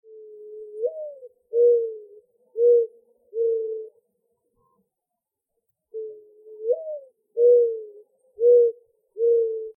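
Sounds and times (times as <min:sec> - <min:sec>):
mourning dove cooing: 0:00.1 - 0:04.0, 0:05.9 - 0:09.7.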